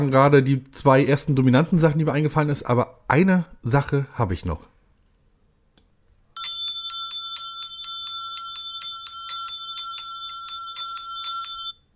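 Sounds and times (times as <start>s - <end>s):
speech: 0.0s - 4.7s
bell ringing rapidly with a bright metallic trill: 6.4s - 11.8s.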